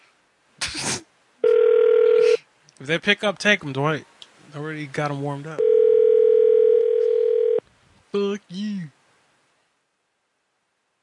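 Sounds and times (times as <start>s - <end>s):
telephone dial tone: 1.4s - 2.3s, 5.6s - 7.6s
speech: 2.8s - 5.7s, 8.1s - 9.0s.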